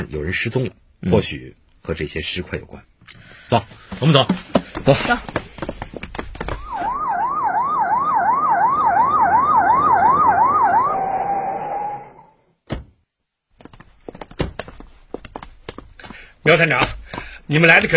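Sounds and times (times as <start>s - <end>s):
speech: 0.0s - 5.4s, 16.4s - 17.9s
scattered footsteps: 3.5s - 7.0s, 13.5s - 17.9s
loud police car siren warbling: 6.6s - 12.4s.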